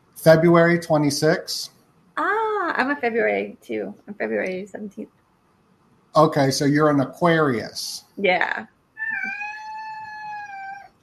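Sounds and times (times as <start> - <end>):
speech: 0.2 - 5.2, 6.1 - 9.5
house cat meowing: 9.0 - 10.9.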